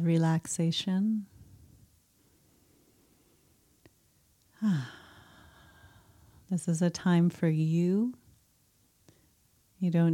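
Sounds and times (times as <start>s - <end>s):
speech: 0.0s - 1.3s, 4.6s - 5.0s, 6.5s - 8.2s, 9.8s - 10.1s
deep breath out during a relaxation exercise: 4.6s - 6.4s.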